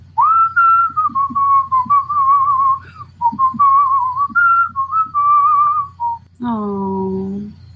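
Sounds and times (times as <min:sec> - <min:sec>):
person whistling a short melodic tune: 0:00.2 - 0:06.2.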